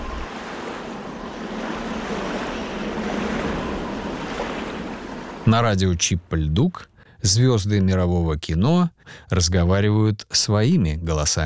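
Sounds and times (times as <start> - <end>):
ocean surf: 0.0 - 6.1
gusting sea breeze: 0.0 - 7.2
speech: 5.5 - 11.4.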